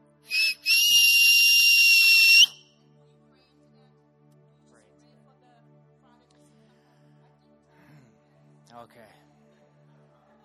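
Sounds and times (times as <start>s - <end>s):
shrill whistle blasts: 0.3s - 2.6s
speech: 8.8s - 9.3s.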